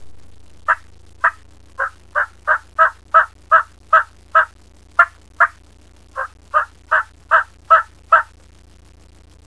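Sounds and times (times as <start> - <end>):
hen locator regroup call: 0.7 - 5.6, 6.2 - 8.3.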